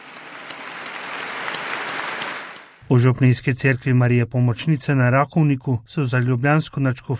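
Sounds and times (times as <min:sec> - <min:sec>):
large group applauding in a parish church: 0:00.0 - 0:02.8
speech: 0:02.9 - 0:07.1.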